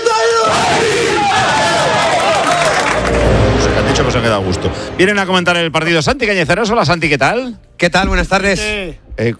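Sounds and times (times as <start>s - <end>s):
athletic team players shouting a battle cry in locker room: 0.2s - 2.8s
speech: 4.1s - 9.3s.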